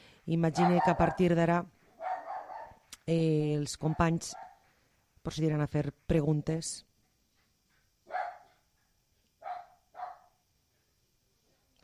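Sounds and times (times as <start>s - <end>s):
speech: 0.2s - 1.8s, 3.1s - 4.5s, 5.2s - 6.9s
small house guard dog barking in the countryside: 0.6s - 1.3s, 2.0s - 2.8s, 4.3s - 4.6s, 8.1s - 8.6s, 9.4s - 10.4s.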